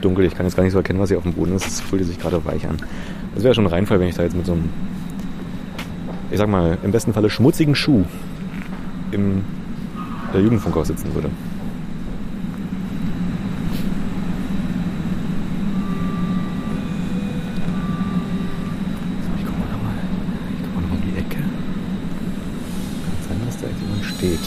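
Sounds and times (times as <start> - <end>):
speech: 0.0 - 5.0, 6.3 - 8.3, 9.1 - 9.6, 10.3 - 11.5
S-Bahn commuter train rumbling: 0.0 - 24.4
faint electric whining tones of S-Bahn commuter train: 0.0 - 24.4.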